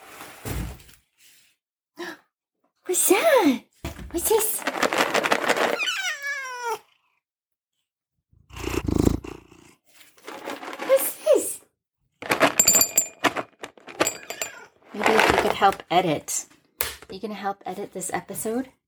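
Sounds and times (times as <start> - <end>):
speech: 3.0 - 5.2, 15.6 - 16.5, 17.1 - 18.8
rustling handling noise: 4.1 - 5.8, 10.1 - 11.4, 12.2 - 16.2
cat purring: 8.4 - 9.8.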